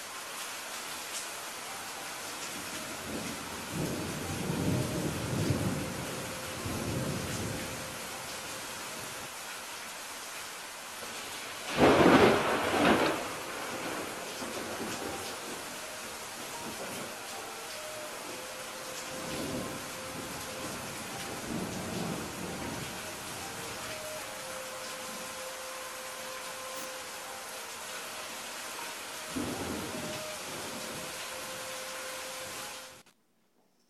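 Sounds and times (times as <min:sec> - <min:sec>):
soft music: 0:00.0 - 0:33.2
steady rain: 0:00.0 - 0:33.2
thunder rumbling: 0:02.8 - 0:08.3, 0:11.7 - 0:17.2, 0:18.1 - 0:25.2, 0:29.3 - 0:31.6.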